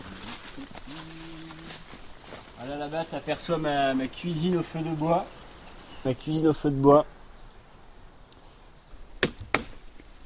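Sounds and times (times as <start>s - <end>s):
speech: 2.6s - 5.4s, 6.0s - 7.2s
log struck while splitting firewood for a wood-fire kitchen: 9.2s - 9.8s.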